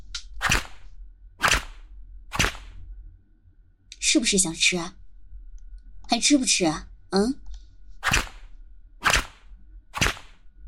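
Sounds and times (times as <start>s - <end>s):
faint low rumble: 0.0s - 10.6s
whip cracks: 0.4s - 0.8s, 1.4s - 2.8s, 8.0s - 10.4s
speech: 4.1s - 5.0s, 6.2s - 7.4s.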